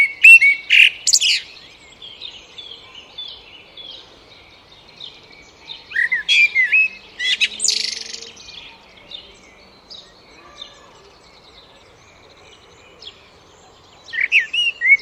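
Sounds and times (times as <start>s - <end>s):
Eurasian blackbird Turdus merula singing: 0.0s - 14.9s.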